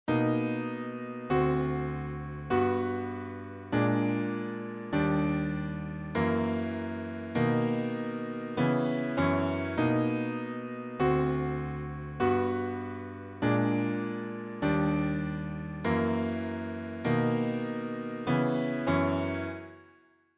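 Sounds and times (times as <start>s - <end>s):
piano playing descending major thirds: 0.1s - 19.8s.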